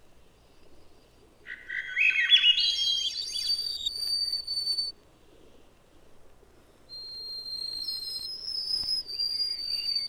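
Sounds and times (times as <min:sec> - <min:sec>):
white-throated sparrow whistling: 0:01.5 - 0:04.9, 0:06.9 - 0:10.0.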